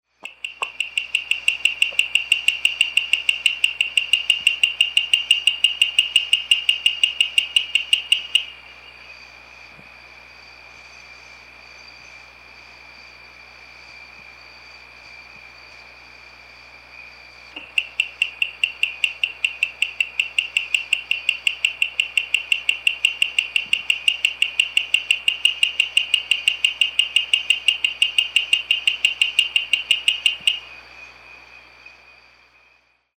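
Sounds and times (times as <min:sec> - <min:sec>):
Sphaenorhynchus caramaschii calling: 0:00.2 - 0:08.9, 0:17.5 - 0:32.0.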